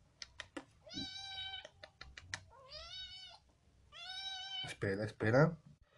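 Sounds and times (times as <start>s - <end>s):
cat meowing in drawn-out cries: 0.8s - 1.8s, 2.5s - 4.7s
speech: 4.7s - 5.7s.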